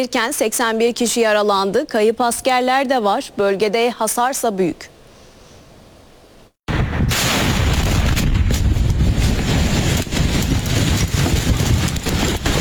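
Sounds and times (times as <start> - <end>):
speech: 0.0 - 4.9
successive explosions at a military fireworks storage depot in Bolivia: 6.7 - 12.5.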